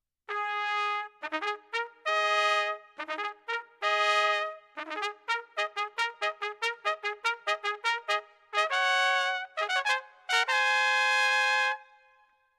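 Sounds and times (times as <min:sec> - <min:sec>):
herald trumpets: 0:00.3 - 0:11.9.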